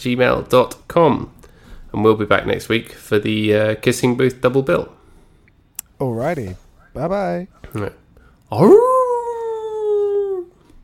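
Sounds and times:
speech: 0.0s - 5.0s, 6.0s - 8.9s
dog howling with a wavering pitch: 8.5s - 10.6s.

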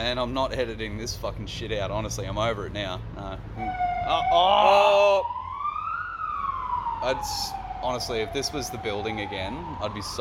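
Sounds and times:
speech: 0.0s - 5.4s, 7.0s - 10.1s
steady noise: 0.0s - 10.1s
ambulance siren wailing: 3.6s - 10.1s.

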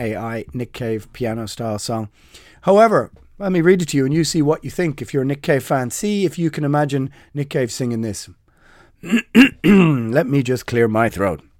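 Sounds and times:
speech: 0.0s - 8.4s, 9.0s - 11.5s
person clearing throat: 9.0s - 10.2s.

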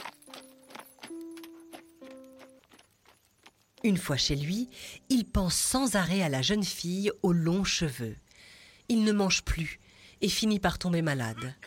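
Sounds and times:
horse hooves clip-clopping as rider rides away: 0.0s - 4.2s
speech: 3.8s - 8.2s, 8.9s - 11.6s.

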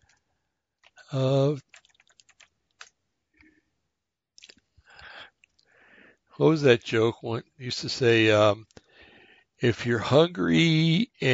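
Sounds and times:
typing on a computer keyboard: 0.8s - 3.0s
speech: 1.1s - 1.7s, 6.4s - 8.8s, 9.6s - 11.3s.

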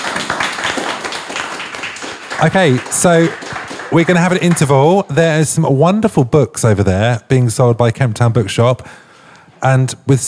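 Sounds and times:
room full of people clapping: 0.0s - 5.0s
speech: 2.4s - 10.2s.

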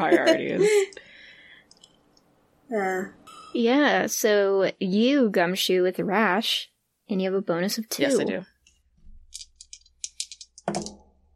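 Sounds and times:
laughter: 0.0s - 0.9s
speech: 0.0s - 1.1s, 2.7s - 8.5s
dice rattling and clattering: 9.3s - 11.0s.

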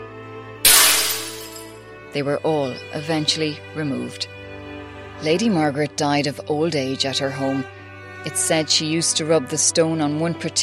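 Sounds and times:
mirror glass shattering: 0.7s - 1.7s
speech: 2.1s - 4.4s, 5.2s - 10.6s.

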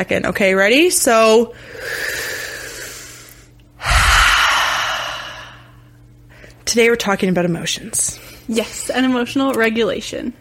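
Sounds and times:
speech: 0.0s - 2.2s, 6.7s - 10.3s
deep noisy breath: 1.6s - 6.0s.

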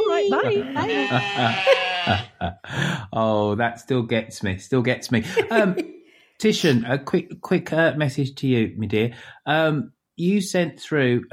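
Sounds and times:
woman imitating sheep bleating: 0.0s - 2.3s
speech: 0.2s - 11.3s
laughter: 0.4s - 2.8s, 5.1s - 6.9s.

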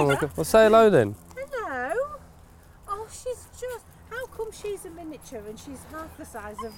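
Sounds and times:
dogs whimpering and whining: 0.0s - 0.4s, 6.0s - 6.7s
speech: 0.0s - 1.2s, 4.6s - 6.7s.

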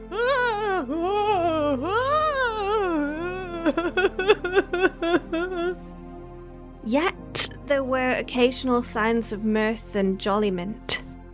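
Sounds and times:
several women weeping and wailing: 0.0s - 5.8s
speech: 3.7s - 5.3s, 6.8s - 11.0s.

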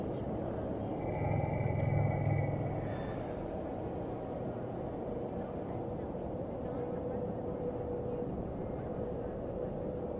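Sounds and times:
thin steady whine: 0.0s - 10.1s
louder humming tone: 0.8s - 3.5s
dense steady low rumble of futuristic city: 0.9s - 4.0s.

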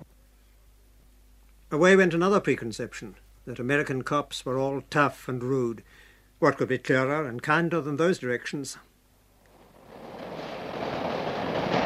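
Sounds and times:
speech: 1.7s - 8.9s
subway train rumbling and rattling along the rails: 9.8s - 11.8s.

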